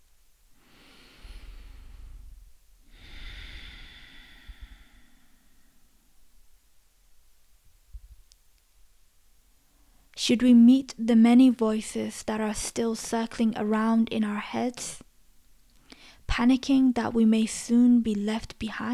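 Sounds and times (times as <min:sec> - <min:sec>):
slow breathing: 0:00.5 - 0:06.2, 0:15.8 - 0:16.3
speech: 0:10.2 - 0:15.0, 0:16.3 - 0:18.9.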